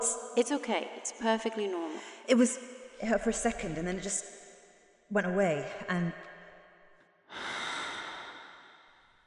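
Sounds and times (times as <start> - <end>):
speech: 0.4 - 4.4, 5.1 - 6.3
deep loud breath: 7.3 - 9.2.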